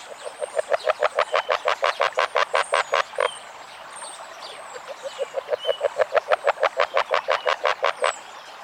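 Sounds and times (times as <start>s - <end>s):
agile frog calling with rapid clucking notes: 0.0s - 3.4s, 4.7s - 8.1s.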